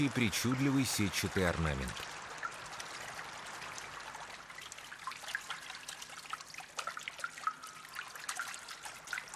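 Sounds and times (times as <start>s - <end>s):
speech: 0.0s - 2.2s
rain falling on a water surface: 0.0s - 9.3s.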